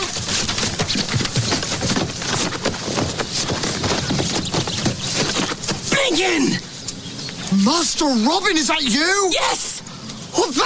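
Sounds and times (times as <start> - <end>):
horse hooves clip-clopping: 0.0 - 6.0
speech: 7.6 - 9.7, 10.5 - 10.6.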